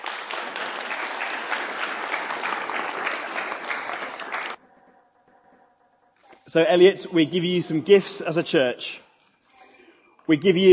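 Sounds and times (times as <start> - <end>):
congregation clapping: 0.0 - 4.6
speech: 6.5 - 9.0, 10.3 - 10.7.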